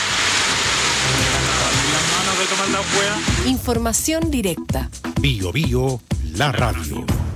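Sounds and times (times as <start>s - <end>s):
dense rain mixed with hail: 0.0s - 4.0s
speech: 2.4s - 7.2s.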